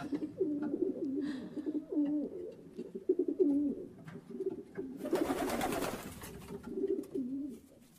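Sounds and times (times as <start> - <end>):
pigeons cooing with low burbling calls: 0.0 - 7.8
fluttering wings or rustling: 5.0 - 6.7.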